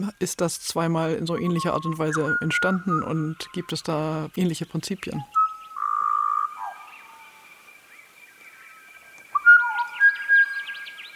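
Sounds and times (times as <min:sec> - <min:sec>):
speech: 0:00.0 - 0:05.4
butcherbird singing flute-like whistled notes and warbles: 0:01.3 - 0:04.1, 0:05.1 - 0:07.4, 0:09.3 - 0:11.1.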